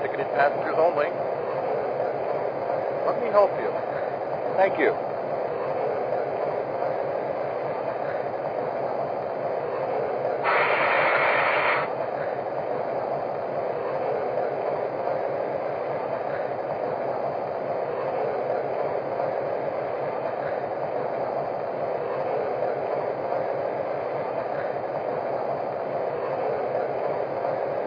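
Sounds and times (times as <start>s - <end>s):
passenger train idling at a station platform: 0.0s - 27.8s
speech: 0.4s - 1.5s, 3.1s - 5.4s
short hiss of released air from a passenger train: 10.4s - 11.9s.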